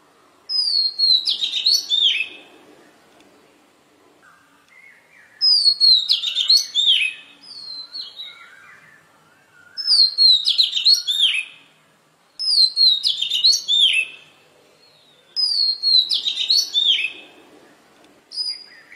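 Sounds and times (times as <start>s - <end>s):
Oriental magpie-robin singing: 0.5s - 2.4s, 4.2s - 17.3s, 18.3s - 18.9s.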